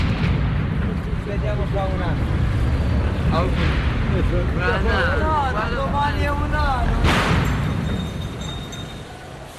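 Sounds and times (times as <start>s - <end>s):
firecracker bangs: 0.0s - 4.6s, 6.8s - 9.0s
loud fireworks blast: 0.0s - 5.2s, 6.8s - 8.2s
booming fireworks in Naples: 0.0s - 8.8s
noisy outdoor crowd chattering in Naples: 0.7s - 9.5s.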